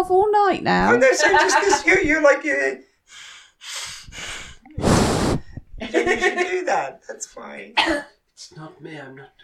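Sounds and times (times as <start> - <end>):
speech: 0.0 - 3.2, 5.9 - 9.4
laughter: 1.0 - 2.2, 5.8 - 6.9
heavy breathing into the microphone: 2.9 - 5.8.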